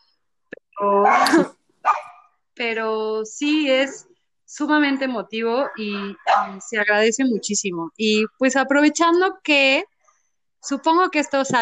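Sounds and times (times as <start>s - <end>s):
dog barking: 1.0s - 2.3s, 5.6s - 6.6s
speech: 2.6s - 9.9s, 10.6s - 11.6s.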